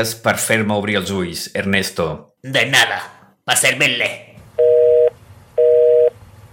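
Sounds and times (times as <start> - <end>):
speech: 0.0 - 4.3
telephone call tone beeping: 4.6 - 6.2.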